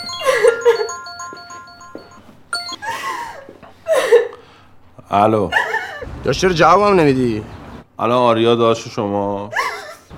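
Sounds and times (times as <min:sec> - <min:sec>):
mobile phone ringtone for an incoming call: 0:00.0 - 0:03.3
speech: 0:05.1 - 0:05.6, 0:06.2 - 0:09.6.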